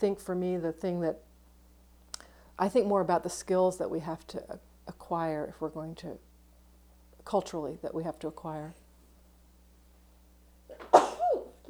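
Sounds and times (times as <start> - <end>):
speech: 0.0 - 1.3, 2.6 - 6.3, 7.2 - 8.8
sneeze: 10.7 - 11.6.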